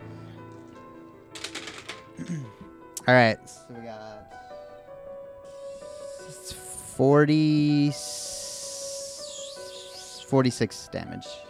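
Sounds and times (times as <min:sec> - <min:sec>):
dice scooped up and rolled: 0:01.4 - 0:02.3
speech: 0:02.2 - 0:03.6, 0:07.0 - 0:08.1, 0:10.3 - 0:11.4.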